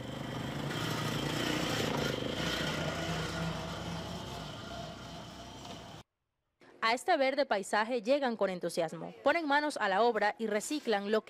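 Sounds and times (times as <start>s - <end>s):
small motor scooter engine running on its route to a waste sorting centre: 0.0s - 6.0s
speech: 6.9s - 11.2s.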